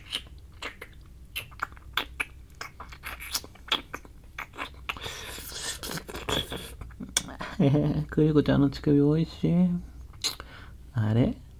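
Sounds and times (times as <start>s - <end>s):
wet licking mouth sounds made by a voice actor: 0.0s - 7.4s, 10.0s - 10.5s
speech: 7.6s - 9.9s, 11.0s - 11.4s.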